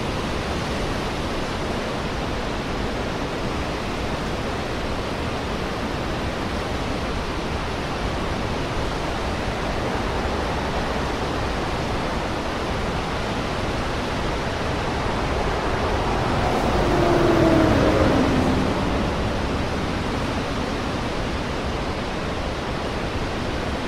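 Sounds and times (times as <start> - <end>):
sea waves rushing: 0.0 - 23.8
faint descending tone possibly a vehicle or aircraft: 14.2 - 20.6.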